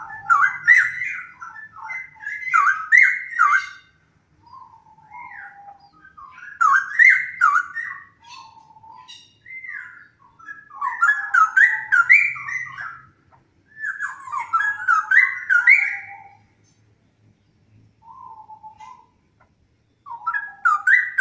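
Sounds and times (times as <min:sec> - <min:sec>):
straw-headed bulbul song: 0:00.0 - 0:16.5, 0:19.9 - 0:21.1.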